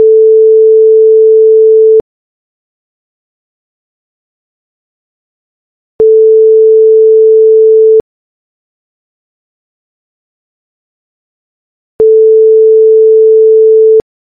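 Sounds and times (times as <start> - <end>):
phone ringing: 0.0 - 2.0, 6.0 - 8.0, 12.0 - 14.0.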